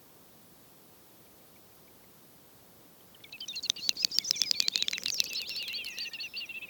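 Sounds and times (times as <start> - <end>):
great snipe display with rattling clicks and warbling twitter: 3.5 - 6.5.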